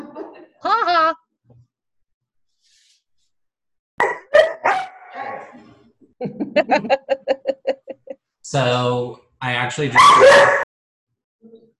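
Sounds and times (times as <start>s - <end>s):
laughter: 0.0s - 1.2s, 6.2s - 8.2s
dog barking: 4.0s - 5.5s
speech: 6.2s - 7.0s, 8.5s - 10.6s.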